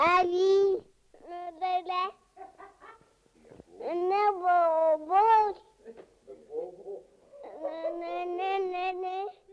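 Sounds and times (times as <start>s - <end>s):
baby girl babbling and cooing on a mono cassette recording: 0.0s - 2.2s, 3.8s - 5.7s, 7.4s - 9.5s.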